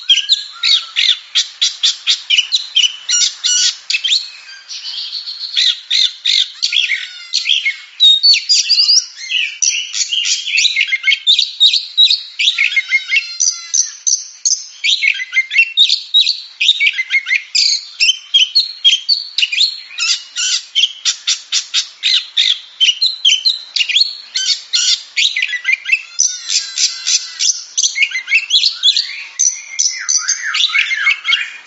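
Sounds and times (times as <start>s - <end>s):
Oriental magpie-robin singing: 0.0s - 31.6s.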